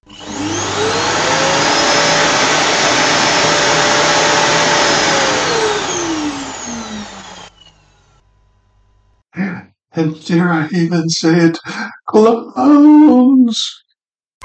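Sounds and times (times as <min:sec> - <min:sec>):
vacuum cleaner motor running: 0:00.0 - 0:08.2
speech: 0:10.0 - 0:13.8.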